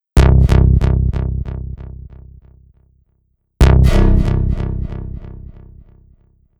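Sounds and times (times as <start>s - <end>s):
sci-fi techno trance music: 0.2s - 2.1s, 3.6s - 5.9s.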